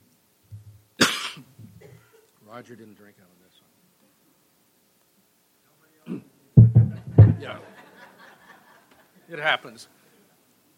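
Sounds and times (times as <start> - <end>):
person getting over a cough coughing: 1.0 - 2.2
speech: 2.5 - 3.6, 7.4 - 7.8, 9.3 - 10.0
laughter: 6.9 - 9.3.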